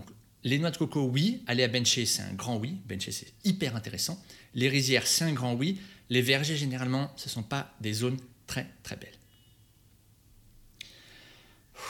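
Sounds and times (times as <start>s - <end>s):
speech: 0.4s - 9.2s
person catching their breath, breathing heavily: 10.8s - 11.8s.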